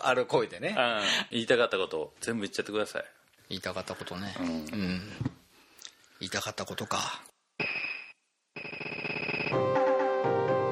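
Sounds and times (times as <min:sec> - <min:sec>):
speech: 0:00.0 - 0:05.3, 0:06.2 - 0:07.3
electronic melodic telephone ringtone: 0:07.7 - 0:09.6.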